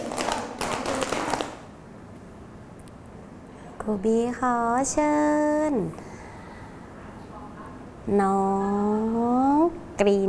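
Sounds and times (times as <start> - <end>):
group of children clapping hands: 0.0 - 1.6
speech: 3.9 - 6.1, 8.1 - 9.4, 10.0 - 10.2.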